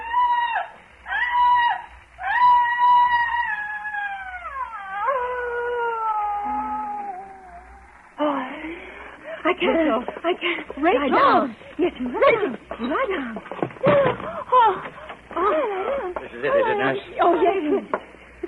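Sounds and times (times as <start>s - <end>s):
tormented high-pitched human shrieking and wailing: 0.0s - 7.9s
speech: 9.6s - 15.7s, 16.3s - 18.0s.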